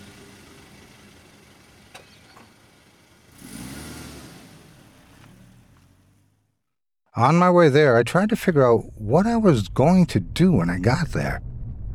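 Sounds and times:
car engine revving as the car backs out of a driveway and drives off: 0.0 - 6.4
speech: 7.2 - 11.5.

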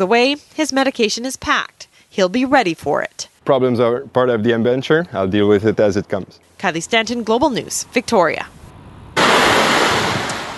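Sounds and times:
speech: 0.0 - 8.6
rushing floodwater torrent: 9.2 - 10.5.

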